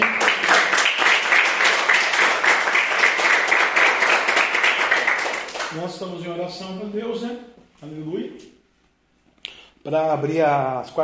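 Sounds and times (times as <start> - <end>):
audience applauding: 0.0 - 5.9
speech: 5.9 - 8.6, 9.8 - 11.0.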